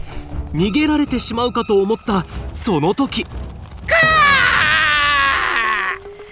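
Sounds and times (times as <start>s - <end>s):
speech: 0.5s - 3.4s
crow screaming: 3.9s - 6.1s.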